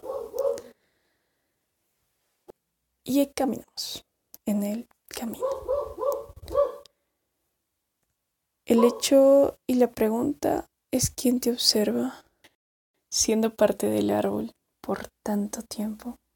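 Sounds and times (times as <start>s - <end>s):
dog barking: 0.0s - 0.7s, 5.4s - 6.9s, 8.7s - 9.2s
speech: 3.1s - 5.8s, 8.7s - 12.2s, 13.1s - 16.2s.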